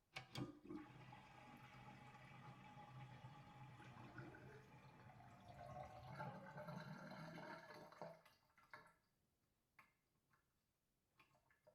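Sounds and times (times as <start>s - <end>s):
distant sink drain: 0.2s - 9.0s.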